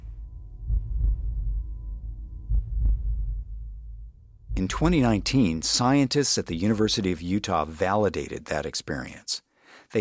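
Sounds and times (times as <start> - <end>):
deep heartbeat-like thumps of the earth heard with ears on ground: 0.0 - 6.0
low continuous rumbling hum: 0.0 - 7.1
speech: 4.6 - 9.9.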